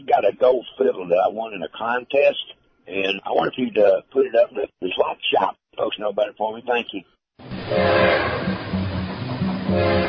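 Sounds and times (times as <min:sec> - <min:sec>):
speech: 0:00.0 - 0:08.5
train horn: 0:07.5 - 0:10.0.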